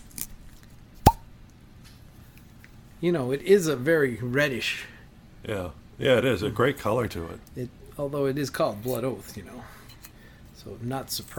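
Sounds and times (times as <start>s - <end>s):
classic cork pulled from a whiskey bottle: 1.0s - 1.3s
speech: 3.0s - 9.8s, 10.6s - 11.3s.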